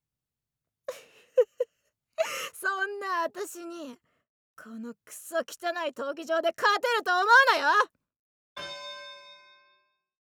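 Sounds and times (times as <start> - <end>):
speech: 3.0 - 8.0
single bright bell strike signalling the start of a fight in a grimy arena: 8.6 - 9.8.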